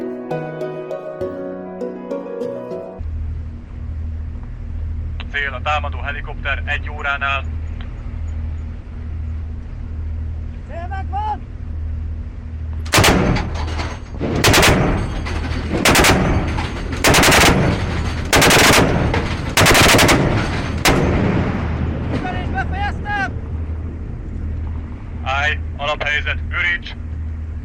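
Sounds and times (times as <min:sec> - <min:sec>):
low engine rumble: 0:03.0 - 0:27.6
speech: 0:05.4 - 0:07.6
quad 20mm cannon firing on the Danube: 0:12.8 - 0:22.7.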